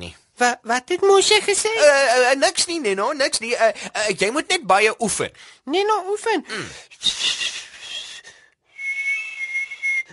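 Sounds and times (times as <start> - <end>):
speech: 0.0 - 7.3
breathy failed attempt at whistling: 7.0 - 10.1.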